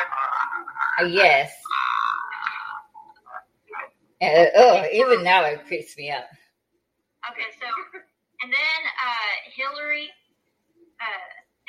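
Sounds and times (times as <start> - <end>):
eerie raspy croaking growl of a crawling ghostly girl: 0.0 - 3.9
speech: 1.0 - 1.6, 4.2 - 6.4, 7.3 - 10.2, 11.0 - 11.4.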